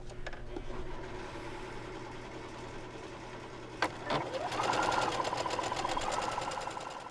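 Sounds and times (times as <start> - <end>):
sewing machine stitching a straight stitch: 2.1 - 7.0.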